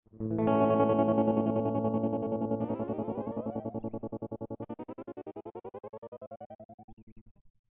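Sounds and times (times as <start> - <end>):
electric guitar: 0.1 - 4.9.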